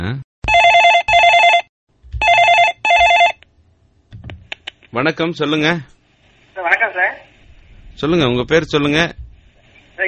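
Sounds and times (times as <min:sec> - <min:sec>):
telephone ringing with an incoming call: 0:00.5 - 0:03.4
speech: 0:04.9 - 0:06.0, 0:08.0 - 0:09.2.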